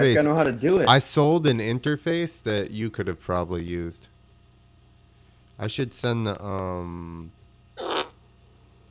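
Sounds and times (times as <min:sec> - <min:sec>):
speech: 0:00.0 - 0:04.1, 0:05.6 - 0:07.9
fart sound effect from a plugged-in soundboard: 0:07.8 - 0:08.2.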